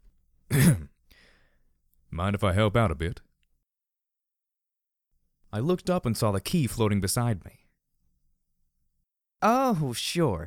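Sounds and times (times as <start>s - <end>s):
man coughing with a hint of amusement: 0.5s - 1.0s
speech: 2.2s - 3.3s, 5.5s - 7.6s, 9.4s - 10.4s.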